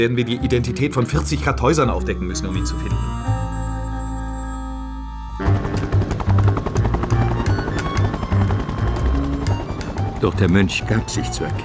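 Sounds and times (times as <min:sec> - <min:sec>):
speech: 0:00.0 - 0:03.6, 0:10.2 - 0:11.6
low helicopter engine drone: 0:02.0 - 0:11.6
helicopter rotor blades chopping in dense driving snowfall: 0:05.4 - 0:11.6.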